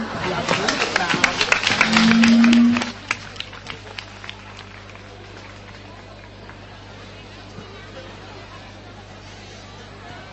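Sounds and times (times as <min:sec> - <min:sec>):
audience applauding: 0:00.0 - 0:07.0.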